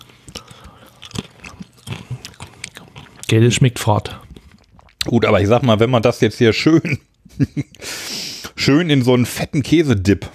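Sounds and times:
biting and chewing a crunchy cracker: 0:00.0 - 0:05.2
speech: 0:03.3 - 0:04.3, 0:05.0 - 0:08.0, 0:08.6 - 0:10.3.

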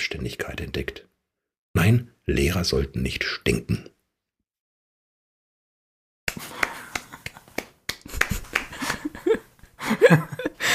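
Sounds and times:
speech: 0:00.1 - 0:01.1, 0:01.8 - 0:04.0
small group applauding: 0:06.3 - 0:09.3
laughter: 0:06.4 - 0:10.7.

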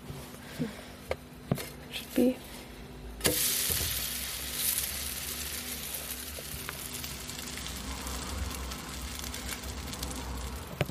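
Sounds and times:
speech: 0:00.6 - 0:00.8, 0:02.2 - 0:02.5
pancake sizzling in a frying pan: 0:03.2 - 0:10.8.

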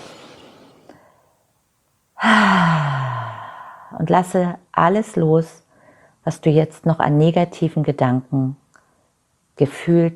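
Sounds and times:
deep breath in and out during a guided tapping relaxation exercise: 0:02.2 - 0:04.1
speech: 0:04.0 - 0:05.6, 0:06.2 - 0:08.6, 0:09.6 - 0:10.1.

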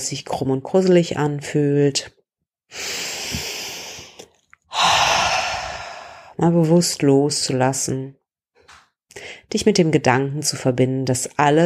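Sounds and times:
speech: 0:00.0 - 0:03.4, 0:06.4 - 0:08.2, 0:09.2 - 0:11.6
deep breath in: 0:02.7 - 0:06.4
long audible exhale: 0:02.7 - 0:06.4.

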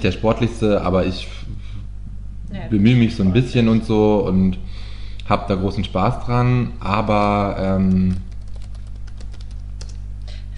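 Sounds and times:
speech: 0:00.0 - 0:01.6, 0:02.5 - 0:04.7, 0:05.3 - 0:08.3
constant low electrical hum: 0:00.0 - 0:10.5
typing on a computer keyboard: 0:07.1 - 0:10.0.

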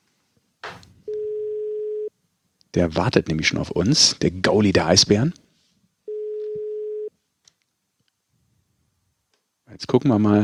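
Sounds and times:
telephone ringback tone while placing a call: 0:01.1 - 0:02.1, 0:06.1 - 0:07.1
speech: 0:02.8 - 0:05.4, 0:09.8 - 0:10.4.

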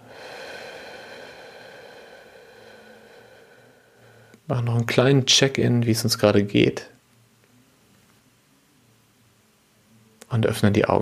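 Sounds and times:
person breathing out slowly during a breathing exercise: 0:00.0 - 0:04.4
speech: 0:04.5 - 0:06.9, 0:10.4 - 0:10.9.

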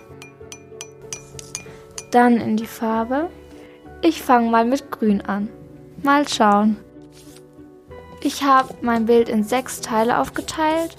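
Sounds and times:
speech: 0:02.1 - 0:03.4, 0:04.0 - 0:06.8, 0:08.2 - 0:10.9
paintbrush swished in a glass of water: 0:07.0 - 0:07.5, 0:08.2 - 0:10.9.

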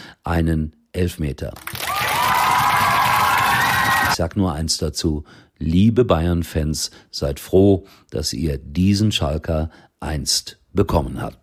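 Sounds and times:
speech: 0:00.2 - 0:01.7, 0:04.2 - 0:11.4
huge stadium crowd cheering: 0:01.6 - 0:04.2
stadium crowd whistling: 0:01.9 - 0:04.2.

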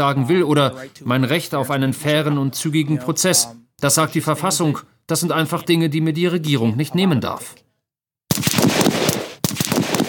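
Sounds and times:
speech: 0:00.0 - 0:07.6
automatic gunfire bursts during weapons training: 0:08.3 - 0:10.0.

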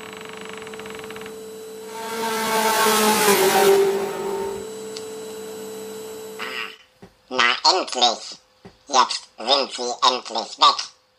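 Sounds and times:
car engine running and revving: 0:01.8 - 0:06.4
speech: 0:07.9 - 0:10.9.

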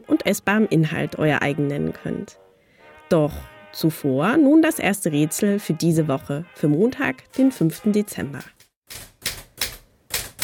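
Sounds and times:
speech: 0:00.2 - 0:02.4, 0:03.1 - 0:08.6
mechanical typewriter keys clacking: 0:07.3 - 0:10.4.

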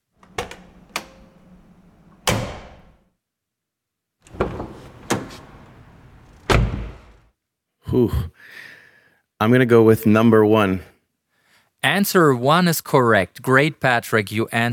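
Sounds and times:
car door latch clicks: 0:00.2 - 0:03.0, 0:04.2 - 0:07.1
air-cooled Porsche car door slamming: 0:04.3 - 0:07.2
speech: 0:07.9 - 0:08.6, 0:09.4 - 0:10.9, 0:11.8 - 0:14.7.

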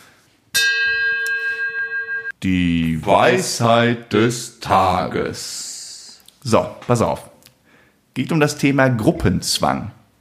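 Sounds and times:
bell ringing: 0:00.6 - 0:02.4
speech: 0:02.4 - 0:05.7, 0:06.4 - 0:07.3, 0:08.2 - 0:10.0.

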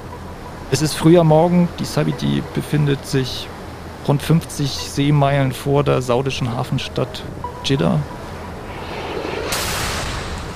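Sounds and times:
speech: 0:00.7 - 0:08.2
steady low rumble: 0:08.3 - 0:10.5
explosions hitting an oil tanker off the Saudi port city of Jeddah: 0:08.7 - 0:10.5.

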